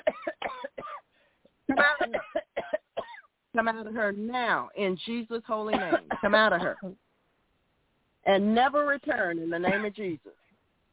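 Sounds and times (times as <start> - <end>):
person coughing during a prayer: 0.0 - 1.0, 1.7 - 3.3, 5.7 - 6.9
speech: 3.6 - 7.0, 8.3 - 10.3.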